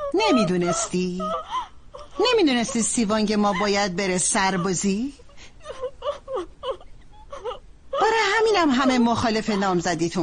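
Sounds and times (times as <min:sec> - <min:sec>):
woman crying and sobbing over fiancé leaving for military service: 0:00.0 - 0:10.2
speech: 0:00.2 - 0:05.8, 0:08.0 - 0:10.2.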